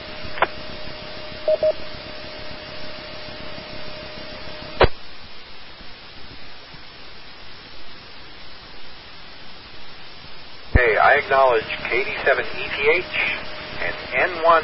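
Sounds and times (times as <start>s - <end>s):
radio static: 0.0s - 8.8s, 9.6s - 14.6s
thin steady tone: 0.0s - 14.6s
brief blips: 1.5s - 1.8s
speech: 1.5s - 2.0s, 11.1s - 14.6s.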